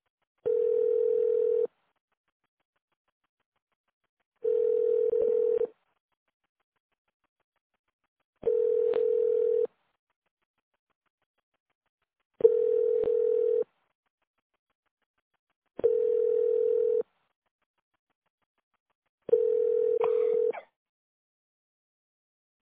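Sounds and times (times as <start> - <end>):
telephone ringback tone while a call is placed: 0.5 - 1.7, 4.5 - 5.7, 8.5 - 9.7, 12.4 - 13.6, 15.8 - 17.0, 19.3 - 20.5.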